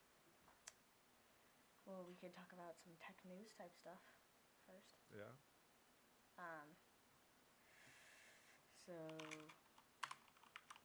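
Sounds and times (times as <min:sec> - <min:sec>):
speech: 0:01.9 - 0:05.5, 0:06.4 - 0:06.9, 0:08.8 - 0:09.6
clacky computer keyboard typing: 0:09.0 - 0:10.8.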